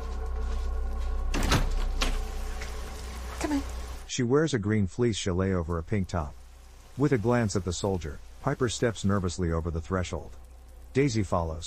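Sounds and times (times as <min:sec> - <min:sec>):
steady low hum: 0:00.0 - 0:04.1, 0:04.7 - 0:11.6
front door opening with creak and scrape: 0:01.2 - 0:02.9
speech: 0:03.5 - 0:06.4, 0:07.0 - 0:11.6.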